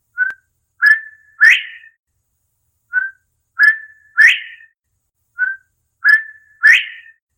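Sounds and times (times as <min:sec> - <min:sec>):
Northern Bobwhite quail call as ringtone: 0:00.8 - 0:02.0, 0:03.6 - 0:04.7, 0:06.1 - 0:07.2.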